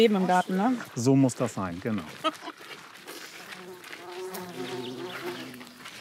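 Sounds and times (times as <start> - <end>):
speech: 0.0 - 2.5
bees and bumblebees buzzing outdoors in a garden: 3.5 - 5.9.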